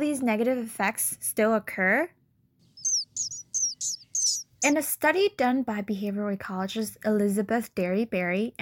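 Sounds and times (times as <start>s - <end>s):
speech: 0.1s - 2.2s, 4.6s - 8.6s
sparrow singing high chirping notes: 2.7s - 4.8s.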